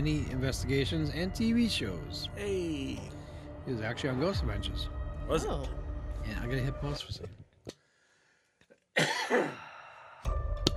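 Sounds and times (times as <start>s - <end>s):
speech: 0.0s - 7.8s, 9.0s - 9.6s
person coughing: 9.0s - 9.7s.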